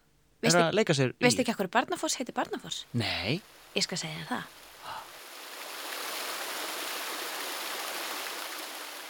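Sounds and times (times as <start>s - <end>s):
speech: 0.4s - 5.0s
waterfall rushing: 4.8s - 9.0s.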